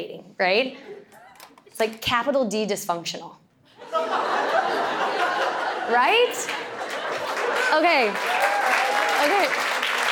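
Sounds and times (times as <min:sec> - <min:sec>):
speech: 0:00.0 - 0:00.9, 0:01.8 - 0:04.4, 0:05.9 - 0:06.6, 0:07.7 - 0:08.4, 0:09.2 - 0:09.6
laughter: 0:03.8 - 0:08.1
crowd applauding: 0:06.4 - 0:10.1.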